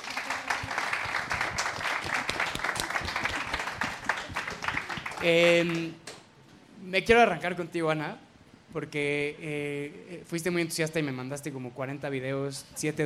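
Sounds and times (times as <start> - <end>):
people cheering or whooping: 0.0 - 5.8
dense audience applause: 0.0 - 5.9
speech: 5.2 - 6.0, 6.9 - 13.0.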